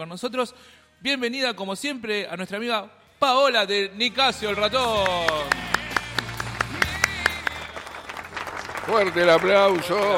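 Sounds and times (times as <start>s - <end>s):
speech: 0.0s - 5.7s, 8.9s - 10.1s
scattered hand claps: 4.9s - 10.1s.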